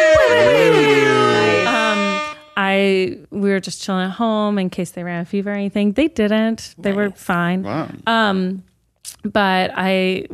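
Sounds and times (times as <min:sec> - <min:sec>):
brassy trumpet-style air horn blaring: 0:00.0 - 0:02.9
speech: 0:03.0 - 0:10.3.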